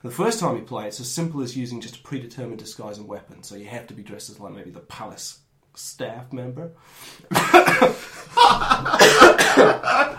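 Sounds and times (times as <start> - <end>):
speech: 0.0 - 10.1
dry coughs from a tickle in the throat: 7.3 - 8.0, 8.9 - 10.0
laughter: 7.3 - 10.1.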